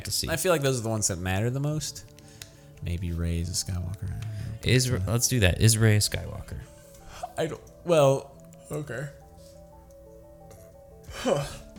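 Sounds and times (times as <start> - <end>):
speech: 0.1 - 2.2, 2.8 - 6.8, 7.4 - 9.2, 11.2 - 11.6
tired person yawning: 11.1 - 11.7.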